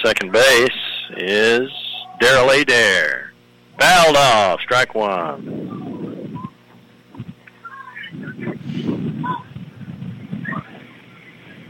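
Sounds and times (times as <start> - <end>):
speech: 0.0 - 3.2, 3.8 - 5.7
gusting wind roaring against the microphone: 5.4 - 7.4, 8.1 - 11.6.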